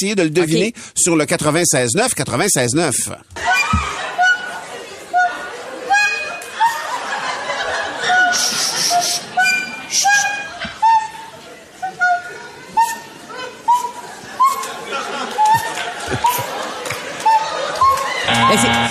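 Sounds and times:
speech: 0.0s - 4.0s
laughter: 3.4s - 18.8s
murmur of audience chatter: 3.4s - 18.8s
recorder playing a simple melody on a TV talent show: 3.5s - 6.9s, 8.0s - 13.1s, 17.2s - 18.8s.

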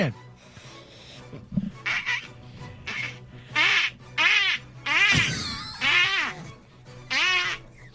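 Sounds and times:
speech: 0.0s - 0.2s
duck call for duck hunting blown into nasal buzzy quacks: 1.8s - 6.5s, 7.1s - 7.7s.

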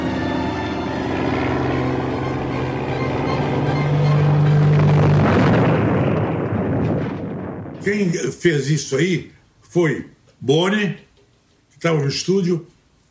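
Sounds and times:
droning aircraft engine: 0.0s - 7.9s
plane crashing and exploding in the air in a staged TV drama scene: 3.6s - 8.2s
speech: 7.9s - 11.0s, 11.8s - 12.7s.

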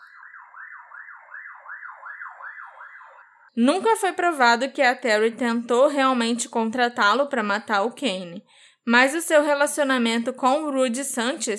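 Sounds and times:
police siren yelping outside: 0.0s - 3.5s
speech: 3.6s - 11.5s.

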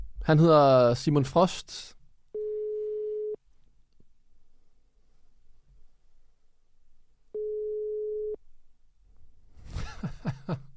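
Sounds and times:
speech: 0.3s - 2.0s
telephone busy signal: 2.4s - 3.4s, 7.4s - 8.4s.

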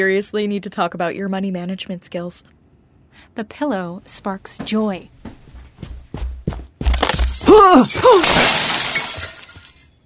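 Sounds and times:
speech: 0.0s - 5.2s, 7.5s - 8.8s
soft footsteps: 4.0s - 7.4s
light fixture glass shattering: 6.9s - 10.0s
broken glass fragments tinkling: 7.0s - 10.0s.

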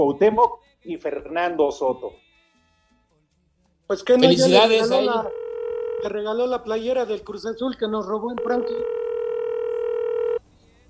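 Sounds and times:
speech: 0.0s - 2.3s, 3.9s - 5.4s, 6.0s - 9.0s
incoming telephone call electronic tone: 5.1s - 6.1s, 8.4s - 10.4s.

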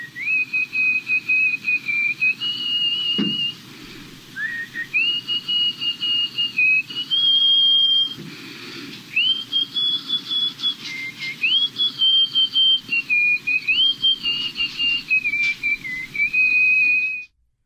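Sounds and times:
loud sustained nose whistle: 0.0s - 17.3s
soft breathy rumble: 3.6s - 5.0s.

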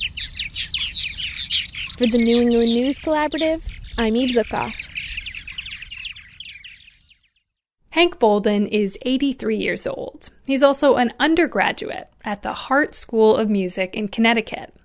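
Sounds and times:
birds calling outdoors: 0.0s - 7.6s
speech: 2.0s - 4.8s, 8.0s - 14.8s.

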